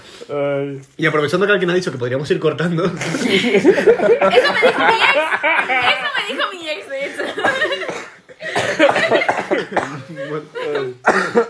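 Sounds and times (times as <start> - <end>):
speech: 0.3 - 7.8, 8.8 - 11.4
laughter: 2.8 - 11.4
person coughing: 7.4 - 11.4.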